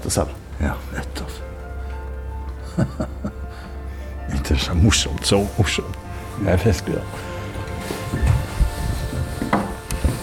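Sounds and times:
speech: 0.1s - 1.4s, 2.8s - 3.3s, 4.5s - 7.3s
laughter: 2.6s - 3.7s
footsteps of people walking on an old wooden floor: 5.2s - 10.2s
old wooden floor creaking: 7.0s - 10.2s.

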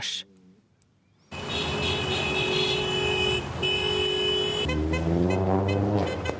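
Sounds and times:
speech: 0.0s - 0.3s
roar of passing traffic on a ring road: 0.0s - 6.3s
car horns honking on a ring road: 1.3s - 6.3s.

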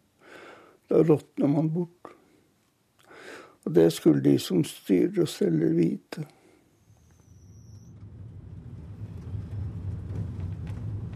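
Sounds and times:
speech: 0.9s - 2.2s, 3.6s - 6.4s
car engine rumbling as the car pulls into a farmyard at night: 7.0s - 11.1s.

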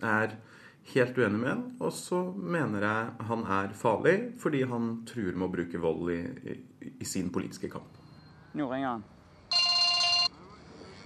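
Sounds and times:
speech: 0.0s - 9.2s
electronic telephone ring: 9.5s - 10.4s.

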